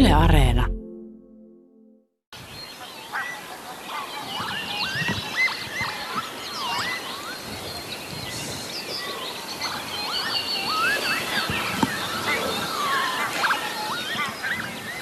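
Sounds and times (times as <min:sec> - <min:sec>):
speech: 0:00.1 - 0:00.7
many birds chirping and singing at a lake in the morning: 0:02.5 - 0:15.0.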